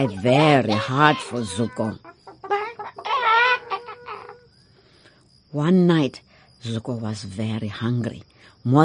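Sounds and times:
speech: 0:00.0 - 0:02.1, 0:05.5 - 0:08.8
chickens cackling: 0:00.0 - 0:04.7.

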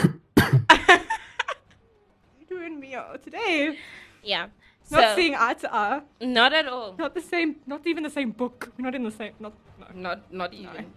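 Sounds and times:
person coughing harshly in rapid bursts: 0:00.0 - 0:00.8
speech: 0:03.0 - 0:10.9.

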